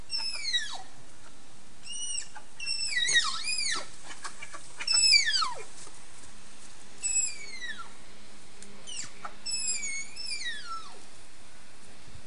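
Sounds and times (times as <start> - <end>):
tapir calling: 0.0 - 5.8, 7.0 - 8.0, 8.8 - 11.1.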